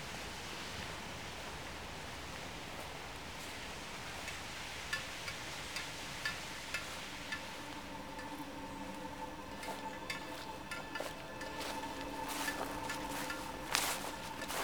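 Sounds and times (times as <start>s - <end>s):
small stream flowing: 0.0s - 14.6s.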